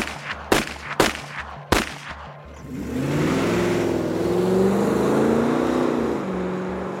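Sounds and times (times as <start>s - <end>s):
sharp loud gunshots fired from a car at night: 0.0s - 2.6s
car engine roaring and revving hard as it speeds away: 1.5s - 6.9s.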